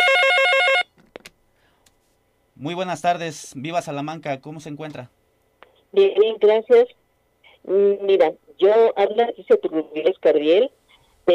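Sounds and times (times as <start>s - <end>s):
telephone ringing with an incoming call: 0.0s - 0.9s
speech: 2.6s - 5.2s, 5.9s - 7.0s, 7.6s - 11.3s.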